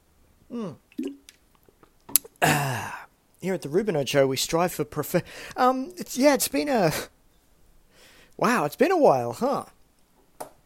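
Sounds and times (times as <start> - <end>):
speech: 0.5 - 0.8, 3.4 - 7.1, 8.4 - 9.8
person sipping water: 0.6 - 2.8.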